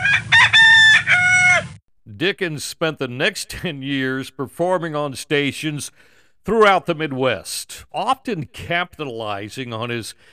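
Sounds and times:
rooster crowing: 0.0s - 1.8s
speech: 2.2s - 10.3s.

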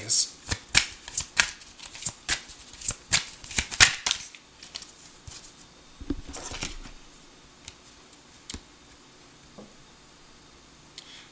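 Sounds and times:
tarot cards being shuffled and drawn during a reading: 0.5s - 8.6s.

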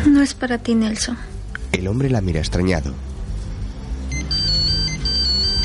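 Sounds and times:
speech: 0.1s - 3.1s
mobile phone ringing with a warbling electronic ringtone: 4.1s - 5.6s.

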